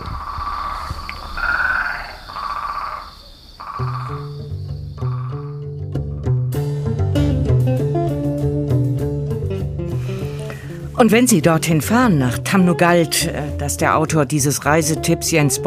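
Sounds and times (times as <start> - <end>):
steady insect-like trill: 0.0 - 5.8
chorus of frogs croaking: 0.0 - 6.0
melodic instrumental tune: 4.4 - 15.6
speech: 11.0 - 15.6.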